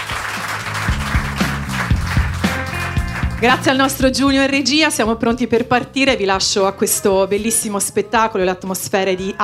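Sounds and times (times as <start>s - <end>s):
audience applause: 0.0s - 3.8s
speech: 3.4s - 9.4s.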